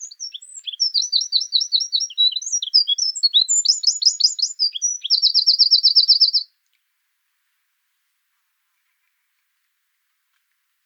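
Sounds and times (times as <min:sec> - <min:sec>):
Eurasian wren song, Troglodytes troglodytes: 0:00.0 - 0:06.5.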